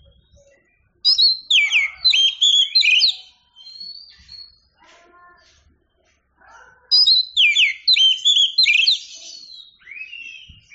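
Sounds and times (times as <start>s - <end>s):
Oriental magpie-robin song with rapid varied whistles: 0.0s - 4.8s, 6.9s - 10.7s.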